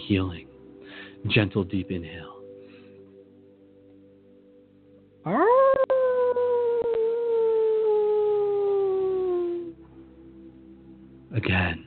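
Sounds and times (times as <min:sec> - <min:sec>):
speech: 0:00.1 - 0:00.5, 0:01.2 - 0:02.4, 0:05.2 - 0:05.6, 0:11.3 - 0:11.8
person imitating a wolf howl: 0:05.2 - 0:09.7.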